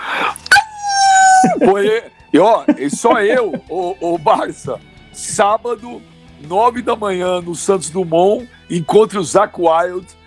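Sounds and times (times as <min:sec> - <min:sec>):
dog howling: 0:00.4 - 0:01.8
laughter: 0:01.0 - 0:04.8
speech: 0:01.4 - 0:10.2.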